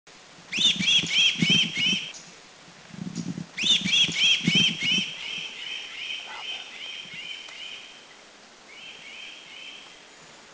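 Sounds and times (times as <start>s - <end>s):
Bar-bellied Cuckooshrike Coracina striata calling in Subic Philippines: 0.5s - 2.3s, 3.6s - 10.0s.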